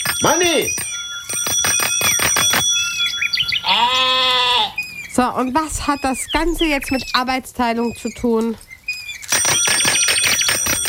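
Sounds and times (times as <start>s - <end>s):
bicycle bell ringing with a metallic trill: 0.0s - 4.1s, 9.3s - 10.8s
speech: 0.2s - 0.9s, 5.2s - 8.7s.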